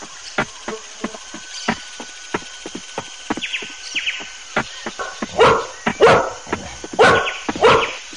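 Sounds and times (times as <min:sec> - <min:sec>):
light irregular tapping and clicking footfalls: 0:00.0 - 0:08.1
large dog barking loudly: 0:05.4 - 0:06.4, 0:07.0 - 0:08.0.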